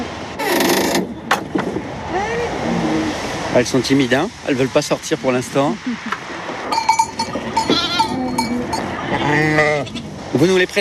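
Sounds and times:
busy outdoor noise: 0:00.0 - 0:10.7
speech: 0:03.6 - 0:06.2, 0:09.3 - 0:10.7
animal bells clinking: 0:06.7 - 0:09.2
Rava sheep bleating: 0:07.5 - 0:10.0.

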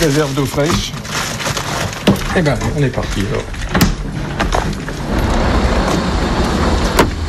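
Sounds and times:
speech: 0:00.0 - 0:01.0, 0:02.3 - 0:03.9
road-service truck engine rumbling as it moves off: 0:00.0 - 0:07.2
sharp clunks of a door or loose gear: 0:03.6 - 0:04.8.

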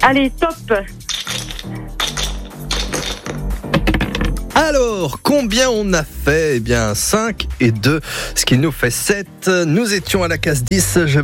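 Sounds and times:
speech: 0:00.0 - 0:01.8, 0:04.6 - 0:11.2
dice clattering and tumbling: 0:01.1 - 0:04.3.

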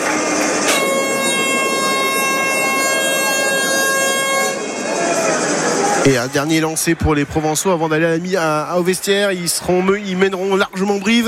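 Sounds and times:
stadium half-time siren blaring: 0:00.0 - 0:08.4
crowd murmuring: 0:00.0 - 0:11.2
speech: 0:06.1 - 0:11.2.

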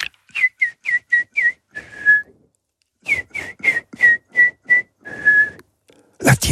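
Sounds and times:
person whistling a short Gascon tune: 0:00.3 - 0:02.3, 0:03.0 - 0:05.6.

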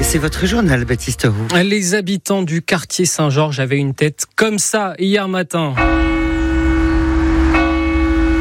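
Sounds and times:
speech: 0:00.1 - 0:06.2
church bells ringing: 0:05.8 - 0:08.3.

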